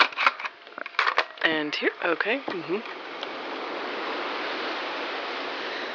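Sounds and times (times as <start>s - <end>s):
ocean surf played from a relaxation cassette tape: 1.4s - 5.9s
speech: 1.5s - 3.2s.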